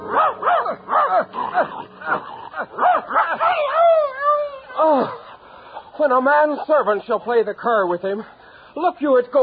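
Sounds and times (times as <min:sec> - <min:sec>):
dog yelping barks: 0:00.1 - 0:03.8
dog wavering whimper: 0:00.1 - 0:05.8
speech: 0:06.0 - 0:09.4.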